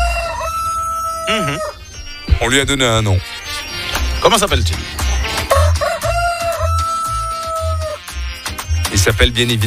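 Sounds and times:
single long rooster crow: 0.0s - 1.9s, 5.4s - 8.0s
speech: 1.3s - 1.8s, 2.4s - 3.4s, 4.2s - 5.1s, 9.0s - 9.6s
steady thumping musical beat: 1.3s - 9.6s.

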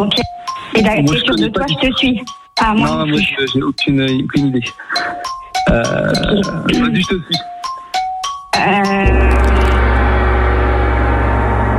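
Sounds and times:
speech: 0.0s - 7.5s, 8.6s - 9.3s
game show gong: 9.0s - 11.7s
short chiming tones: 9.1s - 10.8s.

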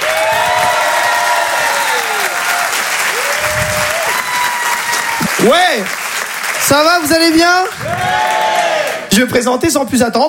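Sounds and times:
scattered cheers and whistles: 0.0s - 5.6s
large audience clapping loudly: 0.0s - 9.2s
speech: 5.4s - 6.0s, 6.6s - 8.2s, 9.2s - 10.2s.

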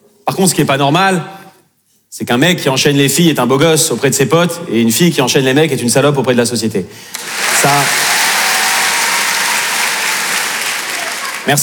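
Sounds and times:
speech: 0.4s - 1.4s, 2.2s - 8.2s, 11.4s - 11.6s
loud sustained audience applause: 7.1s - 11.6s.

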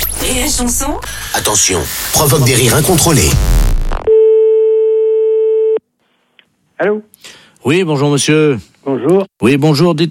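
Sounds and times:
burst of noise: 0.0s - 4.1s
speech: 0.3s - 4.1s, 6.8s - 10.0s
telephone busy signal: 4.1s - 5.8s.

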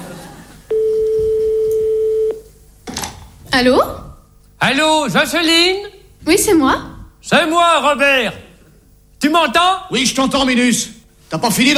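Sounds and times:
telephone ringback tone after dialling a number: 0.7s - 2.4s
speech: 3.6s - 4.0s, 4.6s - 8.4s, 9.2s - 11.7s.

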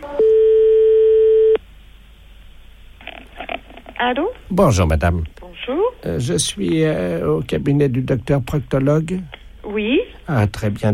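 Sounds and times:
steady telephone line tone while placing a call: 0.0s - 1.6s
quiet hiss: 0.0s - 10.9s
speech: 4.0s - 10.9s.

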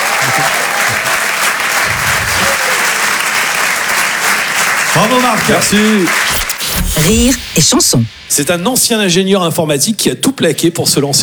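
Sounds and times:
large audience applauding loudly: 0.0s - 6.7s
speech: 5.0s - 6.4s, 7.0s - 11.2s.

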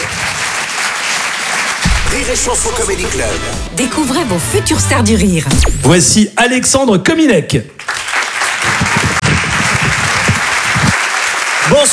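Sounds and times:
audience applause at a live comedy club show in a theatre: 0.0s - 2.0s, 7.8s - 11.9s
speech: 2.2s - 7.9s.

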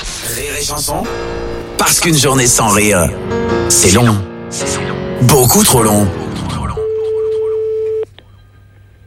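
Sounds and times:
speech: 0.6s - 6.2s
telephone line tone while placing a call: 6.5s - 8.1s.

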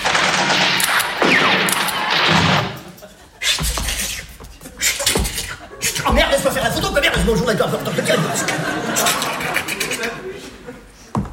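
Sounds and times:
gunfire volley with weapons firing at will: 0.0s - 2.9s
heavy thumps: 1.4s - 7.9s
laughter: 2.8s - 11.2s.

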